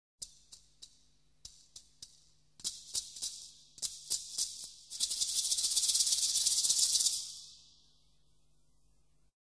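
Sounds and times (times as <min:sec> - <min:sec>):
maracas: 0:00.2 - 0:07.8.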